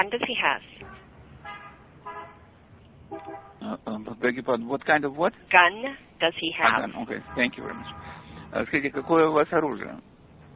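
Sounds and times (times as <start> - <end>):
speech: 0.0 - 0.8, 3.1 - 10.1
car horns honking in a street: 0.8 - 3.9, 6.6 - 9.8.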